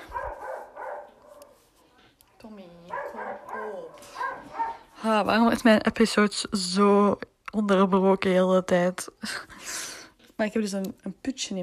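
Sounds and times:
dog giving short barks: 0.0s - 2.2s, 2.8s - 4.9s
speech: 2.4s - 3.0s, 5.0s - 9.8s, 10.4s - 11.6s.

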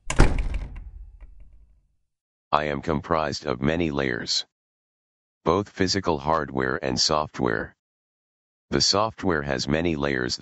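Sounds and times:
door latch clicks: 0.0s - 1.7s
heavy studio door swinging shut as someone leaves: 0.0s - 1.7s
speech: 2.6s - 4.5s, 5.4s - 7.8s, 8.7s - 10.3s.

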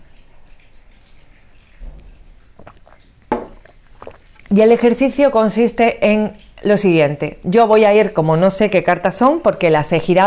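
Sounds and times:
swallow: 1.8s - 4.9s
person sipping water with wet mouth sounds: 2.0s - 4.9s
speech: 4.5s - 10.2s.

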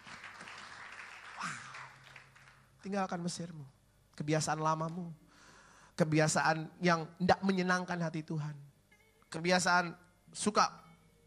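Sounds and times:
audience applauding: 0.0s - 2.7s
person whooping: 1.2s - 2.0s
speech: 2.8s - 5.2s, 6.0s - 8.6s, 9.3s - 10.8s.

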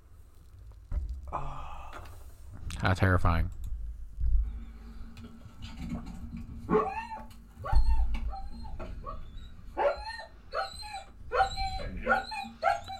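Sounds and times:
speech: 2.8s - 3.6s
German Shepherd dog whimpering and whining at the vet: 6.7s - 12.9s
German Shepherd dog barking at the vet: 9.8s - 12.9s.

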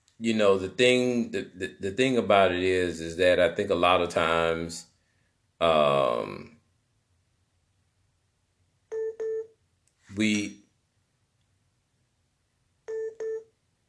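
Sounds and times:
speech: 0.2s - 4.9s, 5.6s - 6.5s, 10.2s - 10.6s
phone incoming-call tone of bright electronic beeps: 8.9s - 9.5s, 12.9s - 13.5s.

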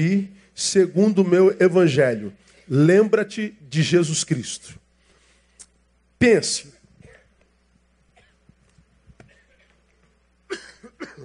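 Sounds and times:
speech: 0.0s - 4.8s, 6.2s - 6.8s
low steady hum: 0.0s - 11.2s
person coughing in a large room: 8.2s - 8.5s, 10.5s - 11.2s.

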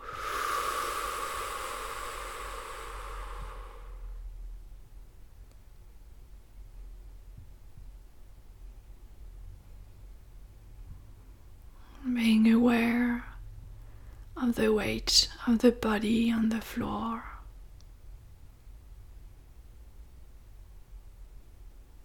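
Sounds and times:
slow deep exhale during a guided relaxation breathing exercise: 0.0s - 4.5s
faint low hum: 0.0s - 22.0s
speech: 14.5s - 17.3s.

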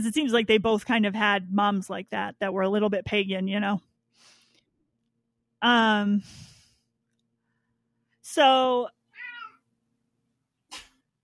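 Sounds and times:
speech: 0.0s - 4.3s, 5.6s - 6.5s, 8.3s - 9.0s
cat meowing: 9.2s - 9.6s.

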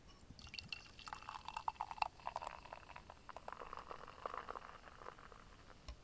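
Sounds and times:
beer pouring into a rounded stemless wine-style glass: 0.4s - 5.8s.

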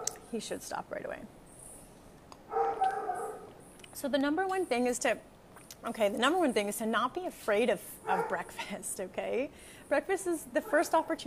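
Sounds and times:
speech: 0.3s - 1.4s, 4.0s - 11.2s
dog barking with a drawn-out whiny yelp: 2.5s - 3.5s, 8.1s - 8.4s.

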